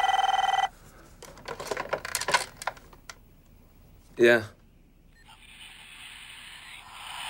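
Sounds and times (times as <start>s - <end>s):
old-style telephone bell ringing: 0.0s - 0.7s
speech: 4.2s - 4.6s.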